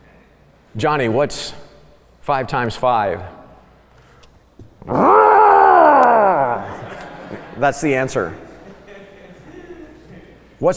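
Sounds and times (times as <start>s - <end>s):
speech: 0.7s - 1.6s, 2.3s - 3.4s, 4.8s - 5.2s, 7.6s - 8.4s
person imitating a dog growling: 4.9s - 6.9s
laughter: 5.9s - 10.4s.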